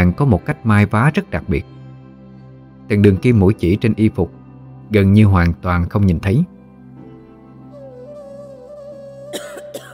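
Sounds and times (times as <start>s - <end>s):
speech: 0.0s - 1.8s, 2.9s - 6.5s
steady sustained musical drone: 7.4s - 9.9s
woman coughing in a sudden coughing fit: 9.3s - 9.9s.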